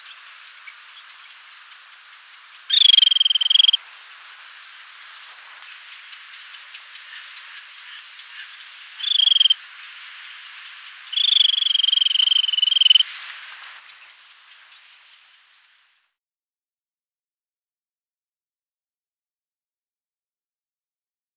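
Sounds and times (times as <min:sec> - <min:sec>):
fulvous babbler buzzy trilled calls: 0:00.0 - 0:03.8, 0:06.3 - 0:09.6, 0:10.3 - 0:13.1.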